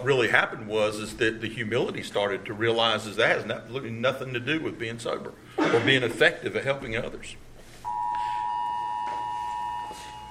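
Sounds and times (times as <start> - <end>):
speech: 0.0 - 7.4
phone emergency alert tone: 7.8 - 10.2.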